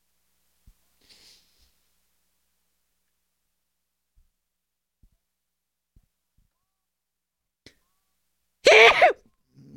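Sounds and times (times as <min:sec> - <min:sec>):
person sneezing: 0:08.7 - 0:09.2.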